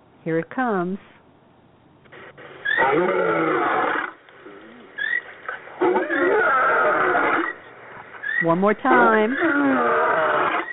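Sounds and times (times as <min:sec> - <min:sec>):
speech: 0:00.2 - 0:01.2, 0:02.9 - 0:03.8, 0:08.4 - 0:10.0
loud rough lion roars: 0:02.7 - 0:07.6, 0:08.9 - 0:10.7.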